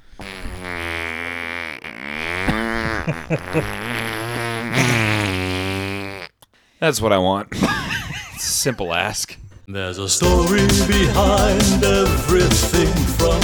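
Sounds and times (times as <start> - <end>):
person vocally imitating a long drawn-out fart: 0.0 - 6.5
laughter: 3.0 - 3.8, 7.6 - 8.9
speech: 3.1 - 4.9, 6.8 - 7.8, 8.6 - 13.4.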